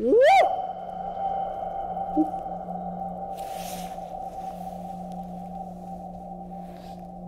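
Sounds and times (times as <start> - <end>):
steady low drone: 0.0 - 7.2
shout echoing down empty unlit sewer tunnel in London: 0.1 - 3.3.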